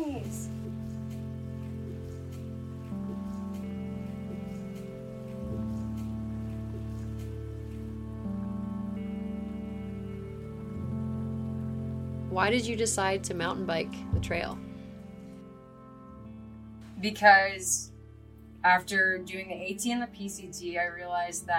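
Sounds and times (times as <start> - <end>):
rain falling: 0.0 - 15.6
low humming tones: 0.0 - 21.5
speech: 12.4 - 14.7, 17.0 - 17.9, 18.6 - 21.5.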